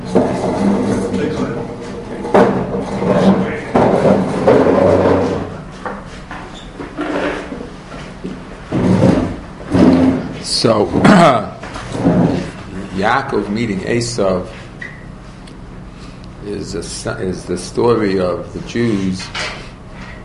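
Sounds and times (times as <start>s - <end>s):
wooden chair shifted and set down with knocks and scrapes: 0.0s - 12.9s
speech: 10.7s - 11.4s, 13.0s - 14.6s, 16.6s - 19.6s.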